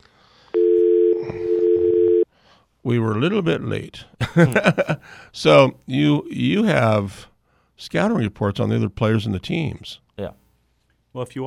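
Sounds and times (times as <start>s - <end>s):
telephone dial tone before a phone call: 0.5s - 2.2s
speech: 2.8s - 10.4s, 11.1s - 11.4s.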